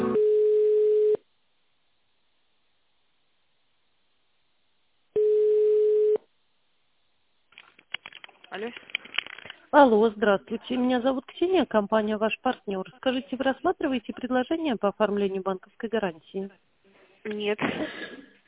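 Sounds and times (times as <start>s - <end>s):
steady telephone line beep during a call transfer: 0.2s - 1.2s, 5.2s - 6.2s
speech: 8.6s - 8.9s, 9.7s - 16.6s, 17.2s - 18.2s.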